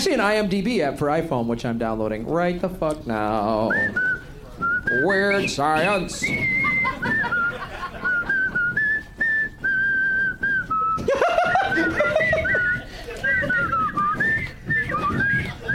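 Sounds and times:
speech: 0.0s - 7.8s
people whistling a melody: 3.4s - 15.7s
people chuckling and laughing: 5.3s - 8.8s, 10.9s - 15.7s.

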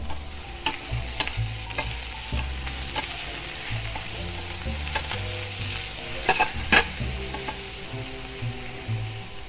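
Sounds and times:
utensil stirring and scraping a pan: 0.0s - 8.2s
mushrooms sizzling in a hot pan: 0.0s - 9.4s.

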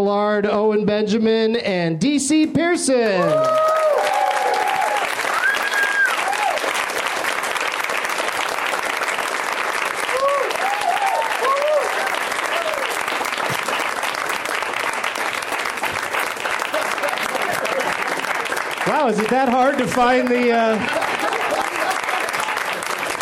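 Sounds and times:
speech: 0.0s - 4.1s, 19.3s - 21.0s
scattered cheers and whoops: 3.2s - 6.8s, 10.0s - 13.0s
large audience applauding: 3.2s - 23.2s
laughter: 16.5s - 23.1s.

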